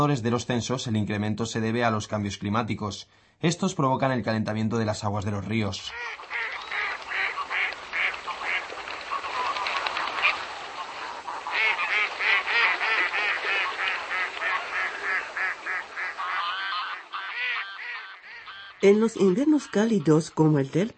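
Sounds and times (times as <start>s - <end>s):
speech: 0.0s - 6.5s, 18.8s - 20.9s
wild geese honking: 5.9s - 20.2s
wild ducks quacking: 5.9s - 20.5s.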